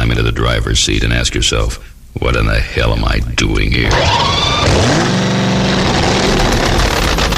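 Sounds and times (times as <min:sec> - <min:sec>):
speech: 0:00.1 - 0:05.3
2,000-horsepower supercharged drag racing engine in a fiberglass Chevrolet Vega revving: 0:03.8 - 0:07.3.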